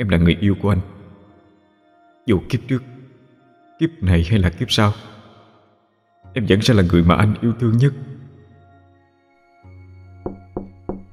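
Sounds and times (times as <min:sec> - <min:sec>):
speech: 0:00.0 - 0:00.9, 0:02.3 - 0:02.9, 0:03.8 - 0:05.1, 0:06.3 - 0:08.2
someone banging on a boarding-room door: 0:10.3 - 0:11.1.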